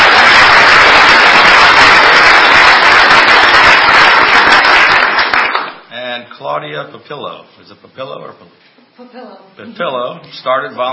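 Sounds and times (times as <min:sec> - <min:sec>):
crowd applauding: 0:00.0 - 0:05.8
speech: 0:06.6 - 0:10.9.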